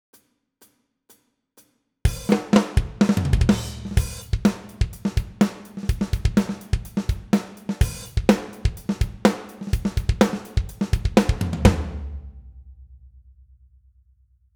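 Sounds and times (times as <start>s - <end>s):
programmed drums: 2.1s - 12.2s.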